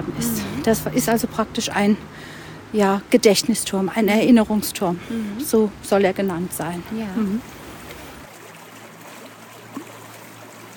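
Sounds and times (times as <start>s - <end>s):
speech: 0.0s - 7.6s
stream babbling through a castle courtyard: 0.0s - 10.7s
small water splash: 7.2s - 10.7s.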